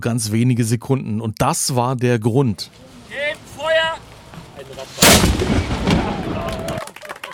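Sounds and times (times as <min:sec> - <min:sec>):
speech: 0:00.0 - 0:06.6
historic ship's cannon firing: 0:04.9 - 0:06.8.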